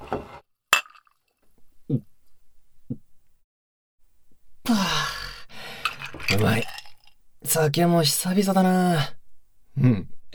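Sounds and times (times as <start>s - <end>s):
glasses clinking in a toast: 0.8s - 1.1s, 5.8s - 7.1s
speech: 4.7s - 4.9s, 6.3s - 6.8s, 7.5s - 9.2s, 9.8s - 10.1s.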